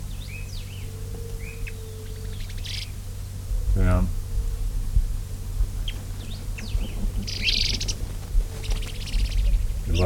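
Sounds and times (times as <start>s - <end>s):
birds calling with chirps, whistles and rapid high trills: 0.0s - 3.0s, 5.8s - 10.0s
steady low rumble: 0.0s - 10.0s.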